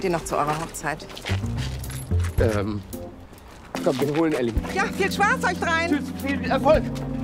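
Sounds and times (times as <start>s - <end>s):
speech: 0.0s - 3.0s, 3.8s - 7.1s
keys jangling and clinking while being handed over: 1.7s - 2.4s.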